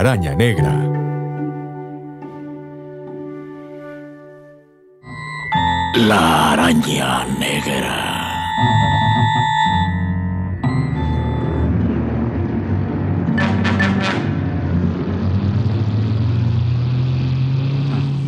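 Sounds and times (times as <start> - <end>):
speech: 0.0 - 0.9, 6.0 - 9.6
sustained electronic tone: 5.0 - 12.2
car engine driving into winding alleys: 6.0 - 18.2.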